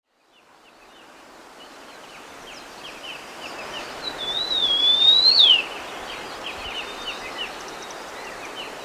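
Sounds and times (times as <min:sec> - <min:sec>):
Sunda bush warbler whistling song: 0:04.0 - 0:05.8.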